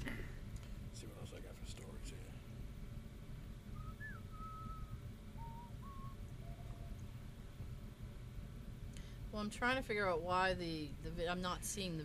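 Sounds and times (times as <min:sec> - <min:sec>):
steady low rumble: 0:00.0 - 0:12.0
speech: 0:01.0 - 0:02.6, 0:09.3 - 0:12.0
person whistling a movie theme tune: 0:03.8 - 0:06.9.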